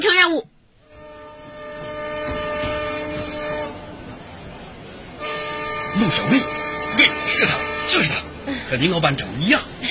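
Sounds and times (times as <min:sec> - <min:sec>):
train arriving at a railway station: 0:00.0 - 0:09.9
speech: 0:00.3 - 0:00.5, 0:06.0 - 0:09.9
sustained droning horn-like tone: 0:00.8 - 0:04.2, 0:05.2 - 0:08.2.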